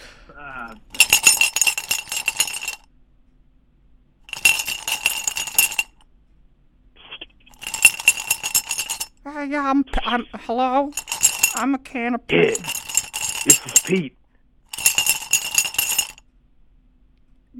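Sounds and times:
speech: 0.3s - 1.3s, 9.4s - 12.8s, 13.4s - 14.2s
pens clinking and rattling together: 0.8s - 2.8s, 4.3s - 5.9s, 7.6s - 9.1s, 12.5s - 13.9s, 14.8s - 16.2s.

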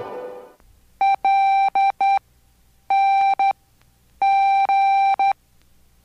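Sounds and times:
Morse code beeps: 1.0s - 2.2s, 2.9s - 3.6s, 4.2s - 5.4s.

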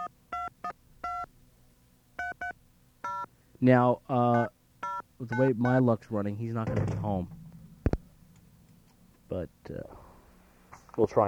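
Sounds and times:
touch-tone keypad beeps of a phone number being dialed: 0.0s - 1.3s, 2.2s - 3.3s, 4.4s - 5.8s
speech: 3.6s - 4.6s, 5.2s - 7.4s, 11.0s - 11.2s.

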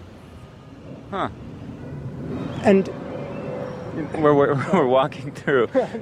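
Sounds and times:
steady low rumble of street traffic: 0.0s - 6.0s
speech: 1.1s - 1.5s, 2.2s - 3.0s, 4.0s - 6.0s
heavy armored cash-transport truck brakes squealing: 1.9s - 5.1s.

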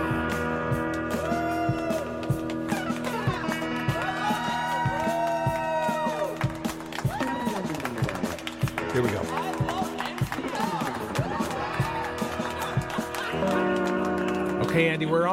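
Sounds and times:
large crowd cheering: 1.0s - 15.3s
scattered whoops from crowd: 1.1s - 2.2s, 3.9s - 8.1s, 10.6s - 13.4s
speech: 9.0s - 9.4s, 14.8s - 15.3s
laughter: 9.6s - 14.1s.

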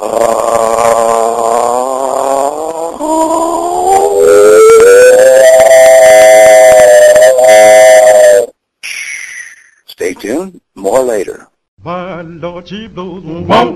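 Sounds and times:
voice imitating a train whistle by gargling and falsetto: 0.0s - 8.5s
speech: 12.7s - 13.6s.

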